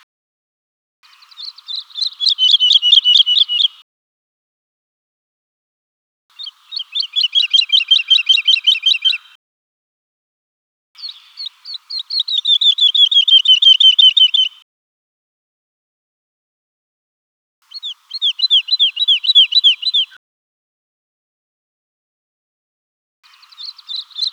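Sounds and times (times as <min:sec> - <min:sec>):
woodlark: 0:01.1 - 0:03.8, 0:06.4 - 0:09.3, 0:11.0 - 0:14.6, 0:17.7 - 0:20.2, 0:23.3 - 0:24.3.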